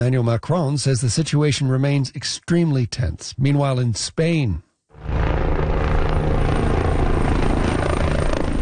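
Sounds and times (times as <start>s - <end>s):
speech: 0.0s - 5.2s
helicopter rotor and engine roar while dropping water on wildfire flames: 5.0s - 8.6s.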